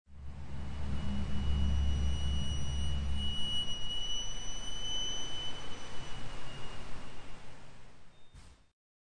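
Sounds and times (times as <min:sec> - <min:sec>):
glissando: 0:00.1 - 0:08.1.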